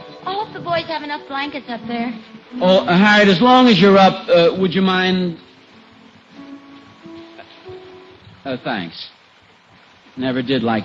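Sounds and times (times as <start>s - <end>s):
faint sustained musical tones: 0.0s - 10.8s
heavy rain pouring down outside: 0.0s - 10.8s
speech: 0.2s - 5.5s, 8.4s - 9.2s, 10.2s - 10.8s.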